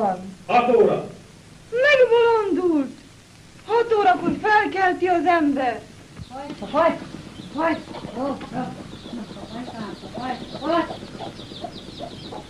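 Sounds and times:
speech: 0:00.0 - 0:01.1, 0:03.8 - 0:12.4
steady low murmur: 0:01.2 - 0:12.4
flock of geese honking: 0:06.3 - 0:12.4.

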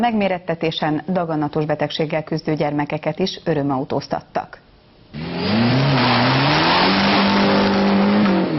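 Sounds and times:
speech: 0:00.0 - 0:05.8
race car engine accelerating at a drag race on Satu Mare airport runway: 0:05.2 - 0:08.5.

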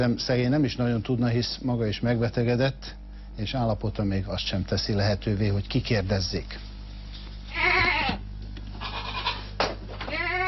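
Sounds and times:
speech: 0:00.0 - 0:06.7
steady low hum of farm background: 0:00.0 - 0:10.4
goats bleating on a goat farm in Lakhegy: 0:07.5 - 0:10.4.

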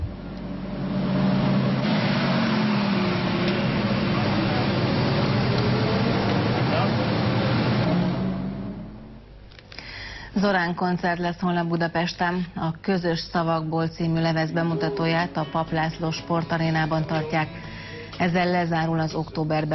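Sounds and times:
Ferrari sports car engines roaring in a convoy driving past: 0:00.0 - 0:09.3
speech: 0:10.4 - 0:19.7.

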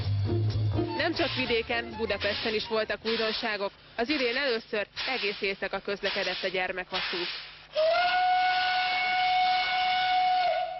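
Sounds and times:
steam locomotive whistle on a nostalgia train on a children's railway: 0:00.9 - 0:03.4, 0:07.7 - 0:10.7
speech: 0:01.1 - 0:08.1.

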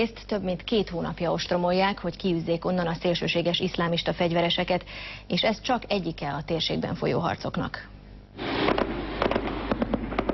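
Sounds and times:
speech: 0:00.0 - 0:08.5
artillery shells exploding in the ruins of a refugee camp under siege: 0:08.4 - 0:10.3.

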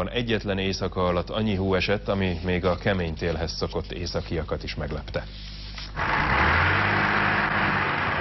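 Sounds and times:
speech: 0:00.0 - 0:06.4
heavy truck engine straining while stuck in snow in Sweden: 0:06.0 - 0:08.1.

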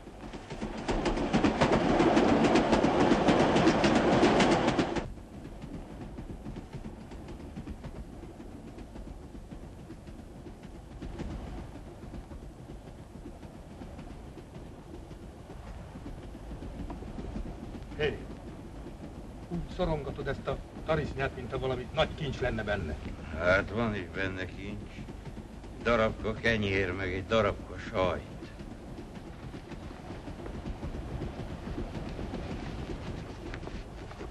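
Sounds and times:
train rattling along the rails: 0:00.0 - 0:34.2
speech: 0:19.8 - 0:25.0, 0:25.8 - 0:28.3.

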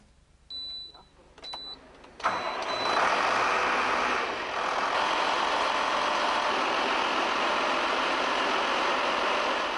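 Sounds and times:
short electronic beeps: 0:00.5 - 0:03.0
biodiesel tractor diesel engine cranking and running: 0:01.5 - 0:09.7.

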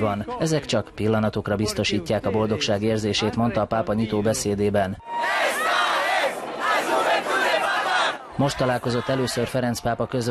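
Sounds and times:
speech: 0:00.0 - 0:05.8, 0:08.4 - 0:10.2
huge crowd of young people chanting a slogan in unison: 0:05.0 - 0:09.6.

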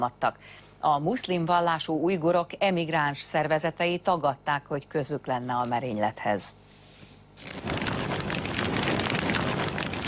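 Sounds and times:
speech: 0:00.0 - 0:06.6, 0:07.4 - 0:08.2
explosion: 0:07.4 - 0:10.0
loud sustained roaring rumble with crackling bursts after an explosion: 0:07.4 - 0:10.0.

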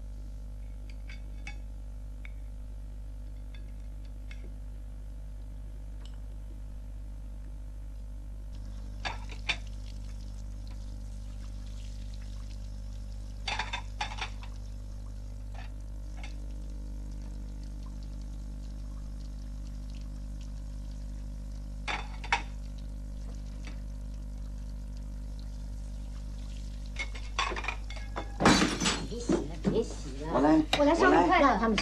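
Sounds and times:
steady low hum: 0:00.0 - 0:31.8
running water: 0:08.5 - 0:31.8
crockery and glass clinking while washing dishes: 0:27.1 - 0:29.5.

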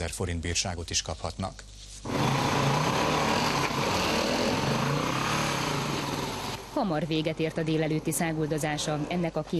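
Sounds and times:
speech: 0:00.0 - 0:02.2, 0:06.8 - 0:09.5
off-road motorcycle engine ridden in a protected forest near Salgótarján in Hungary: 0:02.1 - 0:06.7.

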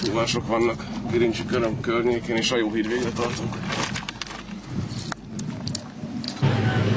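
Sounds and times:
steady low vehicle rumble: 0:00.0 - 0:06.9
speech: 0:00.1 - 0:04.0
metallic snow chains clinking and rattling while fitted onto a car tire: 0:02.8 - 0:05.8.

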